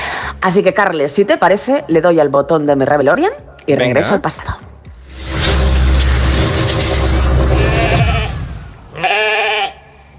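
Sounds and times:
speech: 0.4s - 4.7s
steady low rumbling noise in the countryside: 5.0s - 9.0s
sheep bleating in the countryside by a small village on a cold day: 7.6s - 10.1s.

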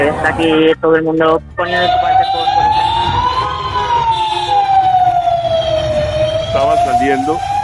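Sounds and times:
speech: 0.0s - 2.4s, 6.5s - 7.5s
fire engine siren wailing: 1.6s - 7.6s.

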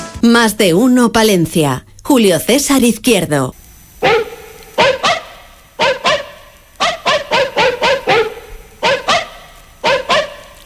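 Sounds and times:
speech: 0.3s - 4.2s
dog barking: 4.0s - 10.6s.

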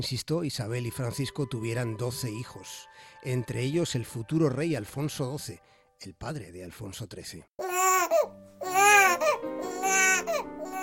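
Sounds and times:
speech: 0.0s - 7.6s
newborn baby crying in high-pitched wails: 7.6s - 10.8s.

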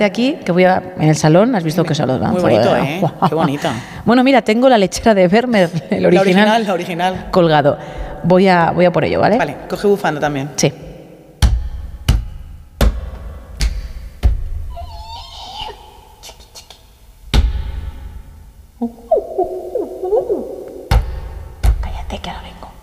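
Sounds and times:
speech: 0.0s - 10.8s
laughter: 2.5s - 3.8s
heavy thumps: 11.4s - 14.7s, 20.9s - 21.9s
owl hooting: 14.7s - 16.9s, 18.8s - 21.3s.

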